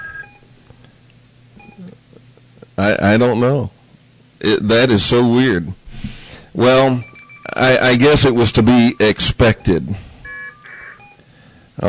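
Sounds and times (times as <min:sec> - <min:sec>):
telephone line ringing tone: 0:00.0 - 0:00.4, 0:07.0 - 0:11.2
low hum: 0:00.0 - 0:11.8
speech: 0:02.8 - 0:03.8, 0:04.4 - 0:05.8, 0:06.6 - 0:10.0.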